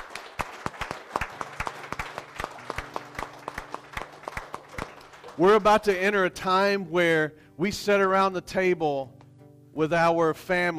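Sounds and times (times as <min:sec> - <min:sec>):
audience clapping hands in praise of God: 0:00.0 - 0:06.3
speech: 0:05.4 - 0:09.2, 0:09.8 - 0:10.7.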